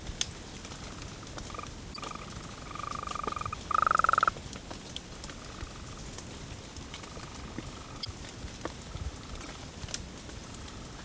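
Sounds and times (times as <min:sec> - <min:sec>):
soft patter like rain: 0:00.0 - 0:11.0
golden toad giving a pulsed trill: 0:00.9 - 0:04.3, 0:05.3 - 0:06.0, 0:06.9 - 0:08.1.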